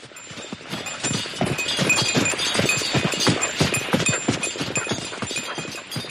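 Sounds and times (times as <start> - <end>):
horses trotting on a winter road, hooves clip-clopping: 0.0 - 6.1.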